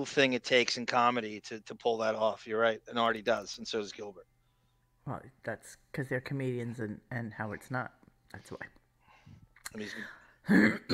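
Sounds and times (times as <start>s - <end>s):
speech: 0.0s - 4.3s, 5.0s - 8.8s, 9.7s - 10.9s
person coughing and clearing throat: 10.4s - 10.9s.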